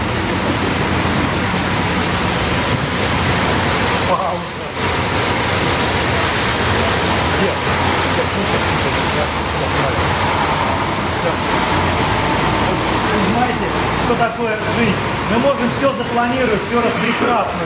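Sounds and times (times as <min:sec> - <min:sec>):
car engine running: 0:00.0 - 0:17.6
speech: 0:16.2 - 0:17.6.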